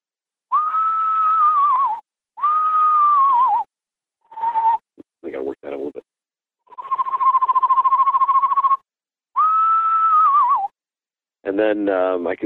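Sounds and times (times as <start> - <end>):
person whistling an eastern screech owl imitation: 0.5 - 3.7, 4.3 - 4.8, 6.8 - 8.8, 9.4 - 10.8
speech: 11.6 - 12.4.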